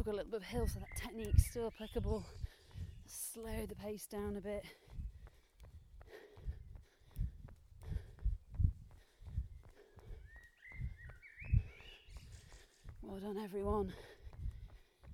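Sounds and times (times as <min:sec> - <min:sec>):
speech: 0:00.0 - 0:04.8, 0:13.0 - 0:14.2
rhythmic footsteps thudding outdoors: 0:00.0 - 0:15.1
various birds chirping and twittering: 0:00.4 - 0:04.4, 0:09.0 - 0:15.0.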